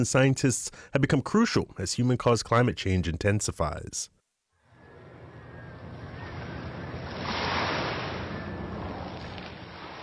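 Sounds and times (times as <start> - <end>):
speech: 0.0 - 4.2
ocean waves crashing on a beach: 4.8 - 10.0.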